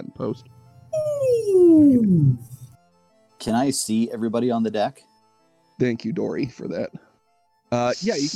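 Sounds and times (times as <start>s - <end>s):
speech: 0.2s - 0.6s, 1.2s - 2.5s, 3.4s - 5.1s, 5.8s - 7.0s, 7.7s - 8.3s
voice imitating a low whale call: 1.0s - 2.7s.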